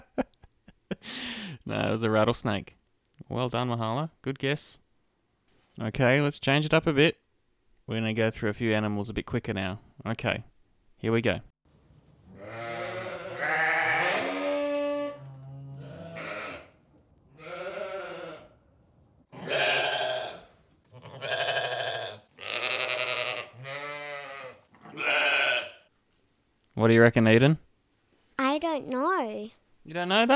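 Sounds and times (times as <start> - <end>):
speech: 1.7 - 4.8, 5.8 - 7.2, 7.9 - 11.5, 26.8 - 27.7, 28.8 - 30.3
sheep bleating: 12.4 - 16.7, 17.4 - 18.5, 19.3 - 25.9.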